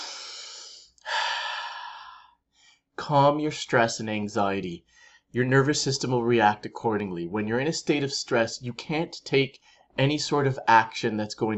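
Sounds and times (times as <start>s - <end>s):
deep calming breaths: 0.0s - 3.0s, 4.8s - 5.4s, 9.6s - 10.0s
speech: 3.1s - 11.5s.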